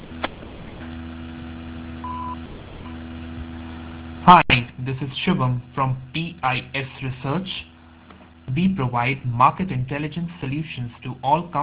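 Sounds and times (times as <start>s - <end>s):
constant low hum: 0.0s - 11.6s
short electronic voicemail beep: 2.0s - 2.4s
speech: 4.3s - 7.7s, 8.5s - 11.6s.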